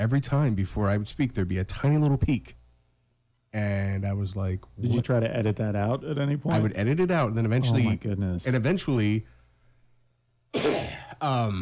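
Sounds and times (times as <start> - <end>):
speech: 0.0 - 2.6, 3.5 - 9.4, 10.5 - 11.6
person coughing: 10.5 - 11.3.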